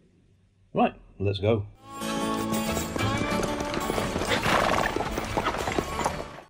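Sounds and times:
speech: 0:00.7 - 0:01.8
jaunty western-style music: 0:01.8 - 0:06.4
horse hooves clip-clopping with a cart: 0:02.1 - 0:06.4
horse whinnying: 0:03.4 - 0:06.4.

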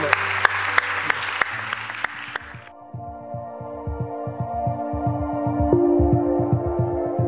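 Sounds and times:
audience applause: 0:00.0 - 0:02.7
music with a steady pulsing low beat and sustained tones: 0:02.5 - 0:07.2.

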